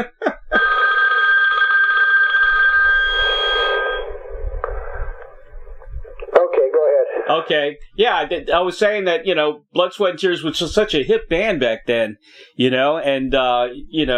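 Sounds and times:
telephone ringing with electronic bell tone: 0.5 - 4.2
low rumbles: 2.5 - 6.4
speech: 7.5 - 14.1.

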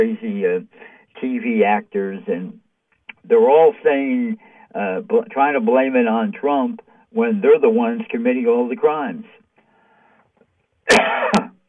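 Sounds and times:
speech: 0.0 - 2.6, 3.2 - 9.4
harsh cough with raspy throat-clearing: 10.9 - 11.6.

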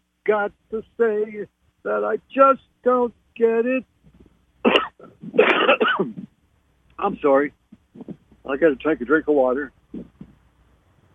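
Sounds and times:
speech: 0.3 - 3.9, 5.0 - 6.2, 7.0 - 10.1
person coughing: 4.7 - 6.3.

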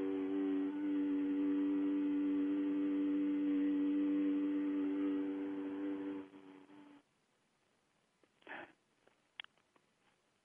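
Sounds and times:
person humming a long steady mmm: 0.0 - 7.0
soft breath: 8.4 - 8.8.

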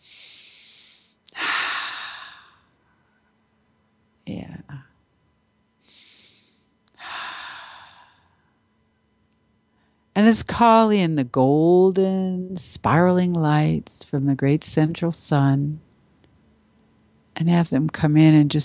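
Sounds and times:
slow deep breathing during a guided meditation: 0.0 - 2.7, 5.8 - 8.4
speech: 10.2 - 15.8, 17.4 - 18.6.

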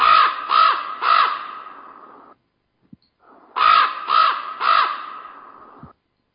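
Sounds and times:
raven croaking with cave-like reverb: 0.0 - 2.4, 3.2 - 5.9.

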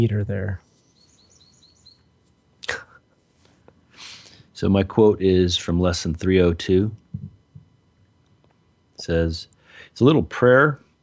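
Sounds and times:
speech: 0.0 - 0.6, 4.6 - 7.3, 9.0 - 10.8
bird chirps: 0.7 - 2.1.

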